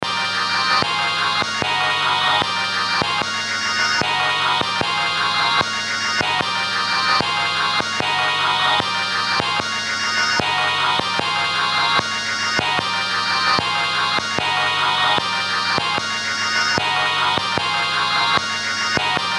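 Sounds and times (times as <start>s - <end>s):
Wersi electronic organ: 0.0s - 19.3s.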